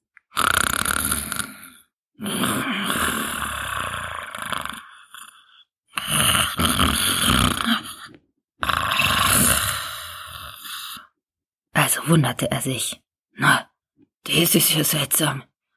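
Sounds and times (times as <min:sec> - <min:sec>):
loud rasping snoring of a wolf asleep in a bed: 0:00.2 - 0:11.2
speech: 0:12.1 - 0:13.7, 0:14.3 - 0:15.5.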